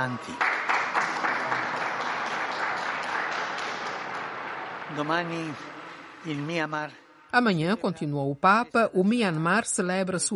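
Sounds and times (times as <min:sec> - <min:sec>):
speech: 0:00.0 - 0:00.6, 0:04.9 - 0:10.3
large crowd applauding: 0:00.0 - 0:07.2.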